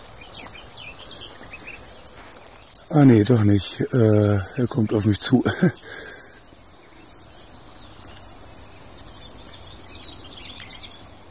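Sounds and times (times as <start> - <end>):
steady rustling noise: 0.0 - 11.2
two birds singing outdoors: 0.0 - 11.2
speech: 2.9 - 6.1.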